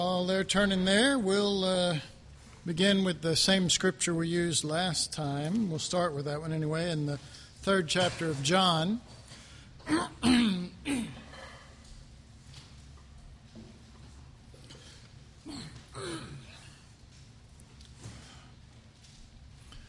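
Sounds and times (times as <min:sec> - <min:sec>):
speech: 0:00.0 - 0:09.2, 0:09.9 - 0:11.2
man clearing his throat roughly: 0:09.8 - 0:11.6, 0:14.7 - 0:16.9
quieter cough-like rasp: 0:15.4 - 0:16.8.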